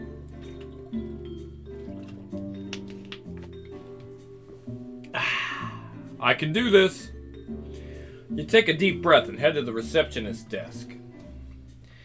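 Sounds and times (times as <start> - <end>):
soft steady music: 0.0 - 12.0
water poured into a cup: 0.3 - 2.7
speech: 6.2 - 7.1, 8.4 - 11.0.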